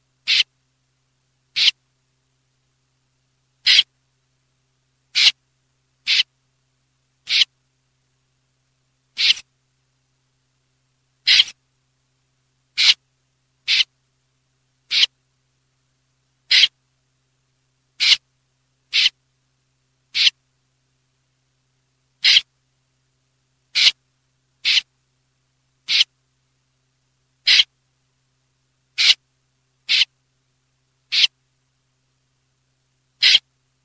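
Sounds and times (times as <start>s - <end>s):
snipe calling: 0.2s - 0.5s, 1.5s - 1.8s, 3.6s - 3.9s, 5.1s - 5.4s, 6.0s - 6.3s, 7.3s - 7.5s, 9.2s - 9.4s, 11.2s - 11.6s, 12.8s - 13.0s, 13.6s - 13.9s, 14.9s - 15.1s, 16.5s - 16.8s, 18.0s - 18.2s, 18.9s - 19.2s, 20.1s - 20.4s, 22.2s - 22.5s, 23.7s - 24.0s, 24.6s - 24.9s, 25.8s - 26.1s, 27.4s - 27.7s, 29.0s - 29.2s, 29.9s - 30.1s, 31.1s - 31.3s, 33.2s - 33.5s.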